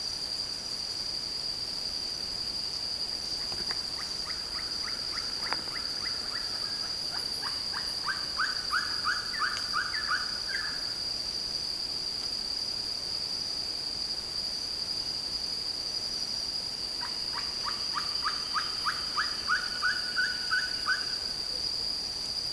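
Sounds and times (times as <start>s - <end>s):
Ferruginous Pygmy Owl Glaucidium brasilianum brasilianum calling in Arizona: 3.4s - 11.0s, 17.0s - 21.5s.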